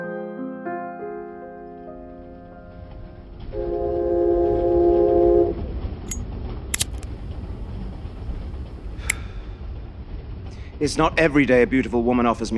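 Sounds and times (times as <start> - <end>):
loud sustained multi-tone train horn: 3.5 - 5.5
speech: 10.9 - 12.5.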